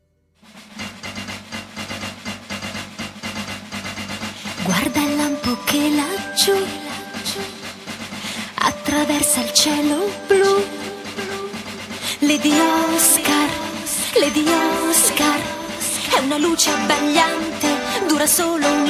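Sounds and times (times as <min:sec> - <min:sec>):
woman singing an upbeat Italian cartoon theme song: 0:04.6 - 0:07.8, 0:08.4 - 0:18.8
full bright band arrangement of an upbeat Italian cartoon theme song: 0:04.6 - 0:18.8
speech: 0:04.7 - 0:07.6, 0:09.0 - 0:10.9, 0:12.3 - 0:13.6, 0:14.2 - 0:18.8.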